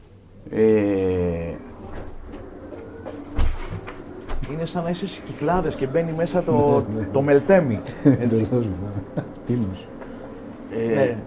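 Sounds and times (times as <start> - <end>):
speech: 0.4 - 0.8, 4.6 - 9.9, 10.8 - 11.2
door shutting thud: 3.3 - 4.5
laughter: 5.8 - 9.8.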